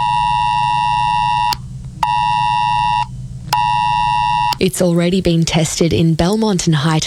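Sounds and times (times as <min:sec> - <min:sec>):
phone emergency warning alert tone: 0:00.0 - 0:04.6
low rumble: 0:00.0 - 0:07.0
speech: 0:04.6 - 0:07.0.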